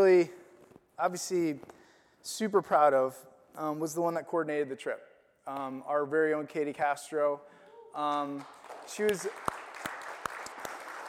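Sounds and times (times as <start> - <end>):
speech: 0.0 - 0.4, 1.0 - 9.5
scattered half-hearted hand claps from a small audience: 8.2 - 11.0.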